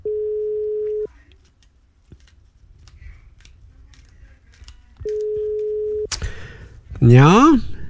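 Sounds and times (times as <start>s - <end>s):
electronic ringback tone of an outgoing phone call: 0.0s - 1.1s, 5.0s - 6.1s
speech: 7.0s - 7.7s.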